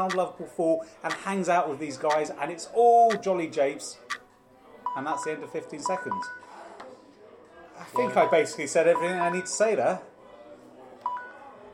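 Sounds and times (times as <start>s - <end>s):
speech: 0.0s - 4.2s, 5.0s - 6.4s, 7.8s - 10.1s
low murmur of voices: 0.0s - 11.7s
electronic phone alarm beep: 5.9s - 6.5s, 7.9s - 9.7s, 11.1s - 11.4s.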